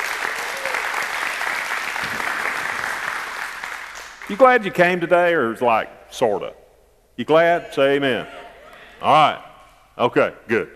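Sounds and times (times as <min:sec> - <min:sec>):
church congregation applauding: 0:00.0 - 0:05.0
speech: 0:04.3 - 0:06.6, 0:07.2 - 0:08.4, 0:09.0 - 0:10.7.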